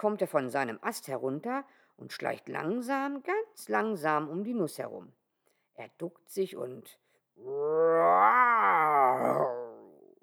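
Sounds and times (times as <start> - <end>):
speech: 0.0 - 5.2, 5.8 - 9.6
lion roaring: 7.4 - 10.1.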